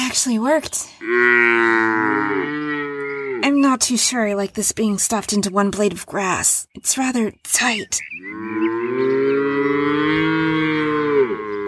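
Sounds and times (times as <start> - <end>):
speech: 0.1 - 2.6, 3.6 - 8.7
black-and-white cow with one blue eye mooing: 1.0 - 3.5, 8.2 - 11.6.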